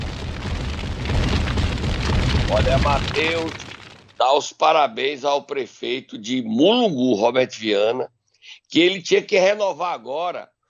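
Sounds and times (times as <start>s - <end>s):
explosion sound effect: 0.0s - 4.4s
speech: 2.5s - 10.5s.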